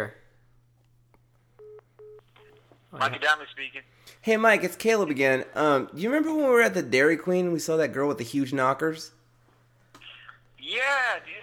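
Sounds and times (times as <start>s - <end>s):
low electrical hum on the telephone line: 0.0s - 11.4s
telephone switching beeps signalling an incoming call: 1.6s - 2.2s
speech: 2.9s - 9.2s, 10.6s - 11.4s.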